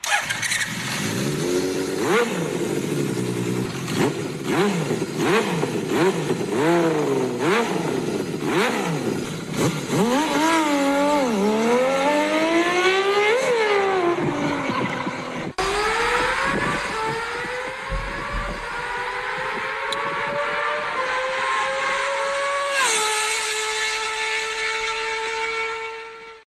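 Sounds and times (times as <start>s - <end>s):
six-cylinder motorcycle engine revving hard: 0.0s - 26.4s.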